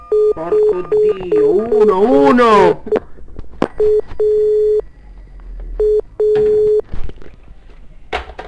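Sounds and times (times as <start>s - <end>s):
telephone line tone of a mobile phone calling 117 in Italy: 0.0s - 2.0s, 3.8s - 4.8s, 5.8s - 6.8s
speech: 0.4s - 3.0s, 3.8s - 4.6s.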